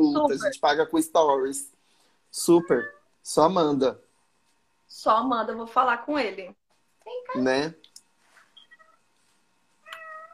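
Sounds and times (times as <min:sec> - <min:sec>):
speech: 0:00.0 - 0:04.0, 0:04.9 - 0:07.8
cat meowing: 0:02.5 - 0:03.1, 0:09.8 - 0:10.3.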